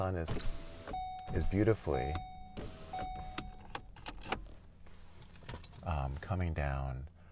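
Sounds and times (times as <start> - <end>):
speech: 0.0 - 0.7, 1.3 - 3.1, 5.8 - 7.1
car electric window motor humming: 0.3 - 5.2.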